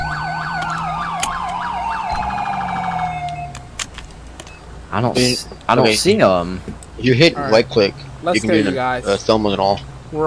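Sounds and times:
video game car siren warbling and wailing: 0.0s - 3.7s
speech: 4.9s - 10.2s.

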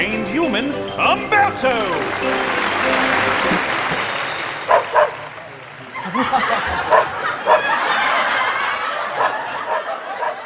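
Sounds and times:
speech: 0.5s - 3.7s, 6.2s - 7.0s
audience applause at a show in Cairo: 1.4s - 10.4s
crowd murmuring: 1.7s - 10.4s
dog performing tricks in a stage act barking: 4.7s - 5.2s, 6.9s - 7.7s, 9.2s - 10.4s
scattered audience laughter: 5.9s - 10.4s.

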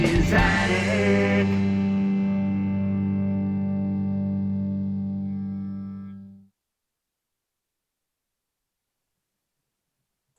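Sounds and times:
loud sustained electric guitar chord with heavy distortion and effects: 0.0s - 6.4s.

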